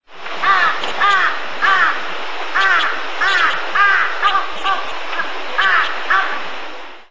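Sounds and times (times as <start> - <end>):
crow: 0.4 - 2.0, 2.6 - 6.4.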